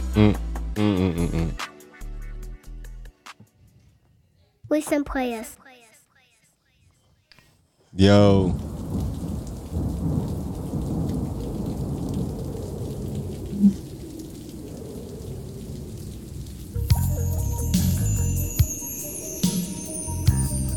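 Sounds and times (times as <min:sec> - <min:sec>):
speech: 0:00.2 - 0:01.0, 0:04.7 - 0:05.6, 0:08.0 - 0:08.7
steady rain falling outside: 0:08.0 - 0:20.7
deep rolling thunder: 0:08.5 - 0:17.0
bright tonal chiming: 0:16.9 - 0:20.7.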